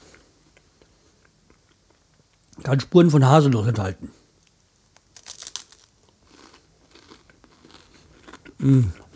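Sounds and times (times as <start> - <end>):
speech: 2.6 - 4.2, 8.6 - 9.0
crunchy Nutella-filled waffle being bitten: 4.4 - 9.1
chewing a Nutella-filled waffle: 5.2 - 9.1.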